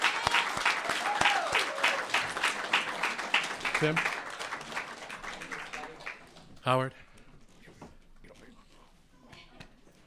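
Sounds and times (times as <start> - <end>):
crowd applauding with dense broadband applause: 0.0 - 6.5
speech: 3.8 - 4.2, 6.6 - 7.0.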